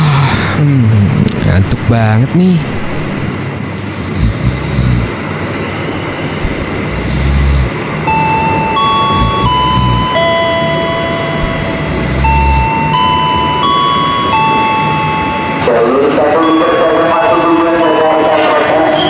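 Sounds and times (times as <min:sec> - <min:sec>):
train rumbling: 0:00.0 - 0:19.0
speech: 0:01.6 - 0:02.8
descending electronic chime tones: 0:08.1 - 0:19.0.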